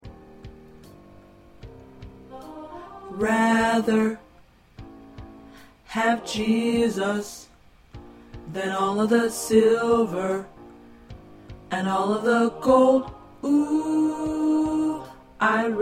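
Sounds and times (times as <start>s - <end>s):
tenor voice singing in choir: 2.3s - 4.3s, 5.8s - 7.5s, 8.5s - 10.5s, 11.7s - 15.8s.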